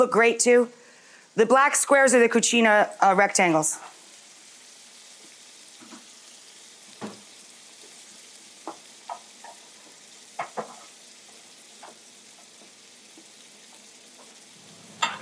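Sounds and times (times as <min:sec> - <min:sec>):
speech: 0:00.0 - 0:00.8, 0:01.4 - 0:03.9
scrambled eggs sizzling in a pan while stirred: 0:00.0 - 0:15.2
utensil clicking and scraping against a pan: 0:14.9 - 0:15.2.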